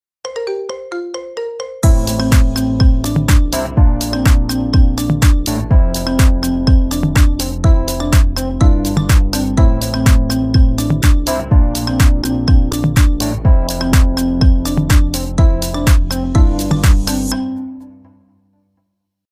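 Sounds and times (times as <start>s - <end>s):
marimba remix ringtone: 0.2s - 18.0s.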